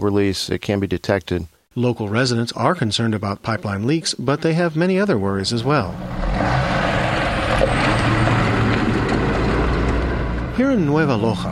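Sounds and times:
speech: 0.0 - 6.6, 10.6 - 11.5
heavy trucks driving on gravel roads: 5.6 - 11.5.

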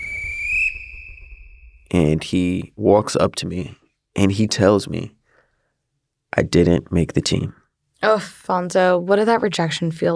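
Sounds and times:
sharp high-pitched coach's whistle blast: 0.0 - 1.9
speech: 1.9 - 5.2, 6.3 - 10.1.

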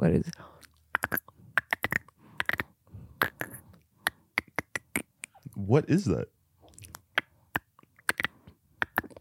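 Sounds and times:
speech: 0.0 - 0.5, 5.7 - 6.4
person imitating a dolphin with mouth clicks and squeal: 0.9 - 5.4, 7.0 - 9.1.

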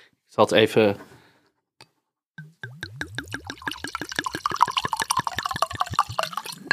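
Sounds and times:
speech: 0.3 - 1.1
wine glugging out of a bottle into a glass: 2.4 - 6.7.

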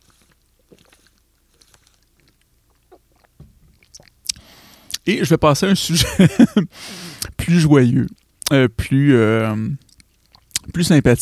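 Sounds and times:
person sipping water: 0.0 - 5.1, 8.0 - 8.6, 9.7 - 10.8
soft mouth and swallowing noises: 0.0 - 5.1, 8.0 - 8.6, 9.7 - 10.8
speech: 5.0 - 9.8, 10.8 - 11.2
laughter: 6.0 - 6.7.

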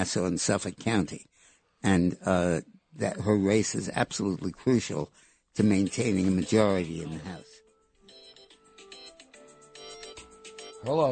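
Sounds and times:
speech: 0.0 - 7.5, 10.8 - 11.1
phone ringtone: 5.8 - 11.0.

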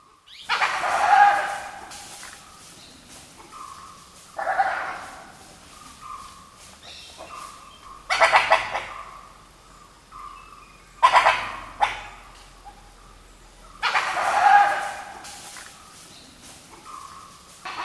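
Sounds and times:
dhole yelping calls: 0.4 - 2.4, 3.4 - 9.4, 10.1 - 12.9, 13.8 - 15.8.

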